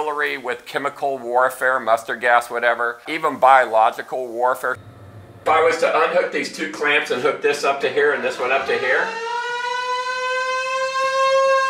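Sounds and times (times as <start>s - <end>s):
speech: 0.1s - 9.4s
air raid siren wailing as a lunchtime signal at a bunker: 8.0s - 11.6s.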